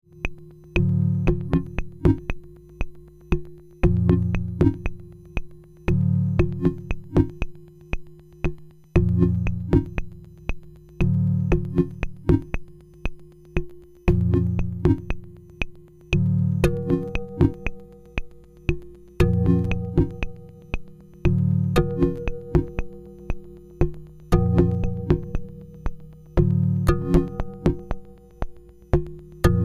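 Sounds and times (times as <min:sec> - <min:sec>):
ARP 2500 synthesizer: 0:00.1 - 0:29.6.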